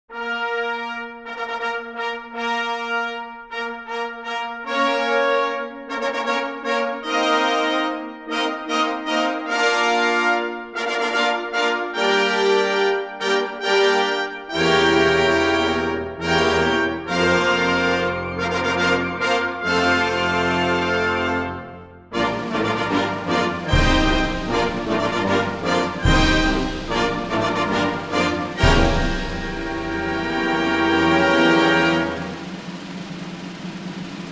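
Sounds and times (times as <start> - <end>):
arrival fanfare: 0.1 - 34.2
long drum roll: 22.2 - 34.2.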